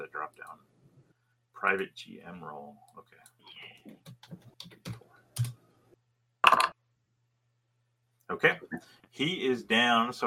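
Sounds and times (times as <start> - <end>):
speech: 1.6 - 5.0, 8.3 - 10.2
typing on a computer keyboard: 3.7 - 5.6.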